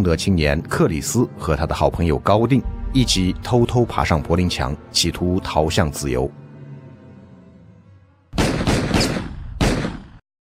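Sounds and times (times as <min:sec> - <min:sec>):
speech: 0:00.0 - 0:06.4
quiet low tonal hum: 0:01.2 - 0:08.3
gunshots at the Berlin Wall on a winter night: 0:08.4 - 0:10.2.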